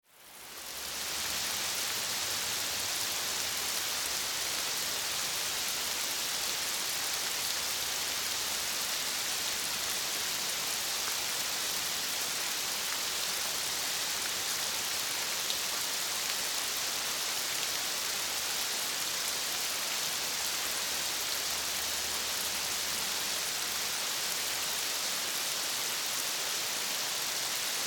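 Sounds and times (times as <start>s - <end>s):
rain: 0.0s - 27.8s.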